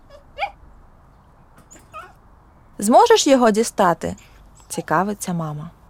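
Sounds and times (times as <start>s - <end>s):
small dachshund whimpering under the stairs: 0.0s - 0.6s, 1.7s - 2.2s
speech: 2.8s - 5.8s.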